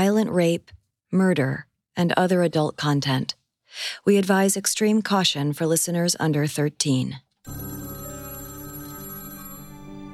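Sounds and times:
speech: 0.1s - 7.8s
old-fashioned telephone bell ringing with metallic jangle: 7.5s - 10.1s.

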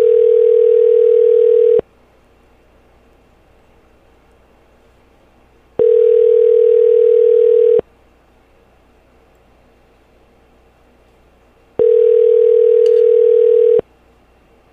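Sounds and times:
telephone ringback tone of an unanswered call: 0.0s - 1.8s, 5.8s - 7.8s, 11.8s - 13.8s.

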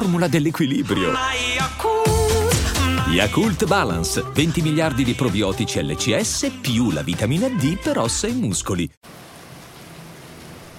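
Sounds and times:
speech: 0.2s - 2.1s, 3.1s - 9.2s
steady rain falling on a skyscraper rooftop in a big city: 9.0s - 10.7s.

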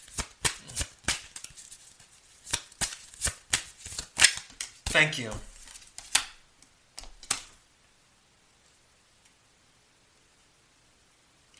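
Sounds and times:
tarot cards being shuffled to draw a clarification card: 0.0s - 6.4s
speech: 5.0s - 5.5s.

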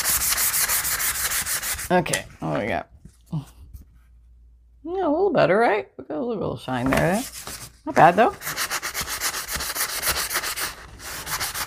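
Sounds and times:
sanding with a hand block: 0.0s - 1.9s, 8.4s - 11.6s
speech: 1.9s - 3.6s, 4.8s - 8.6s.

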